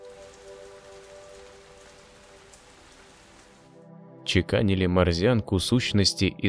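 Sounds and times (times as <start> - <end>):
light drizzling rain pattering on a surface: 0.0 - 3.8
speech: 4.3 - 6.4.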